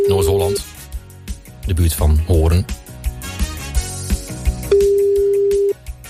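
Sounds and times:
rhythmic music with thumping beats: 0.0 - 6.0
speech: 1.8 - 2.8
telephone call ringing out: 4.7 - 5.8.

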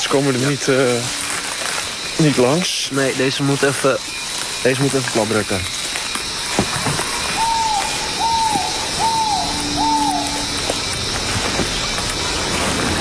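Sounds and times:
steady hiss: 0.0 - 12.9
speech: 0.1 - 1.2, 2.2 - 5.8
bird in a tree giving a deep whistling call: 6.4 - 10.9.

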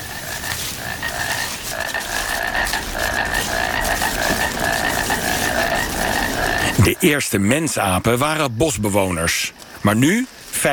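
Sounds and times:
painted frogs croaking in a chorus: 0.0 - 10.7
speech: 6.9 - 10.7.

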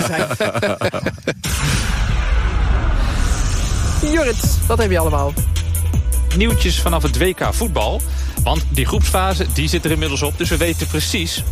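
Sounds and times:
laughter: 0.0 - 1.5
speech: 0.1 - 1.1, 4.3 - 5.5, 6.4 - 11.5
fireworks booming: 1.3 - 5.5.

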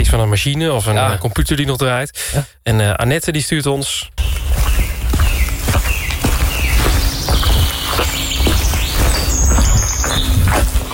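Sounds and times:
speech: 0.0 - 4.4
birds chirping and singing in a wet forest: 4.2 - 10.9
footsteps on soft wet ground in a wet forest after rain: 4.2 - 10.9.

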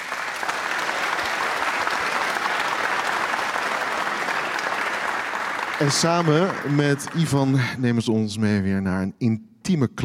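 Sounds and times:
audience applause in a large room: 0.0 - 8.1
speech: 5.8 - 10.0.

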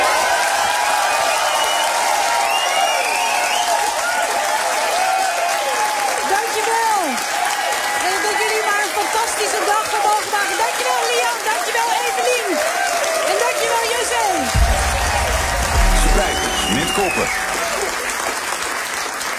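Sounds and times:
crowd cheering and whooping: 0.0 - 6.4, 12.0 - 18.6
large crowd applauding: 0.0 - 19.3
low rumble: 14.4 - 18.4.

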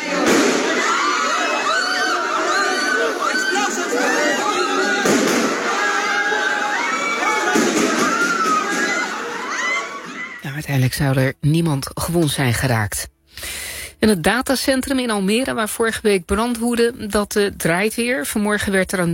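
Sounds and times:
loud chaotic crowd shouting in an echoing parliament hall: 0.0 - 10.4
sharp gunshot bangs: 0.2 - 0.8, 5.0 - 5.6
speech: 10.8 - 19.1.

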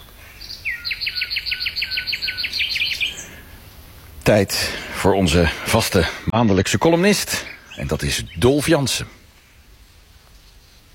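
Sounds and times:
bird singing in an evening concert: 0.0 - 4.1, 4.7 - 10.9
speech: 4.3 - 9.2.

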